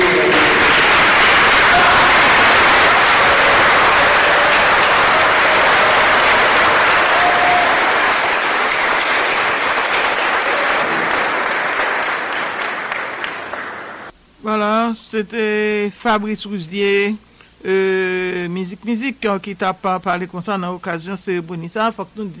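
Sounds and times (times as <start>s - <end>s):
standing ovation from an audience at a tribute in Haiti: 0.0s - 14.1s
speech: 15.2s - 22.3s.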